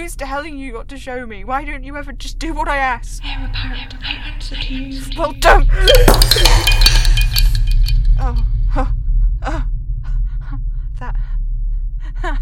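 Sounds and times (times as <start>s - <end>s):
low steady hum: 0.0s - 12.3s
speech: 0.1s - 7.0s, 8.2s - 9.6s
glass shattering into tiny pieces: 5.8s - 8.1s.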